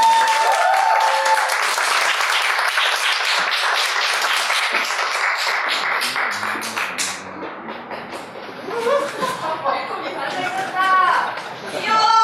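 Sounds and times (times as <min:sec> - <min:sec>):
audience applause at a book talk: 0:00.0 - 0:09.2
scattered laughter at a book talk: 0:06.0 - 0:12.1.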